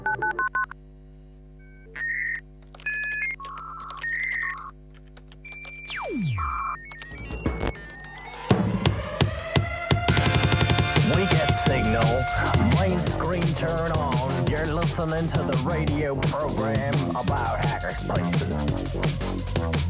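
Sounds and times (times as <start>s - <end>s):
telephone keypad dialing tones for a service number: 1.6s - 6.2s, 6.8s - 9.9s
harsh buzzy electronic noise: 5.5s - 19.8s
speech: 15.0s - 19.8s.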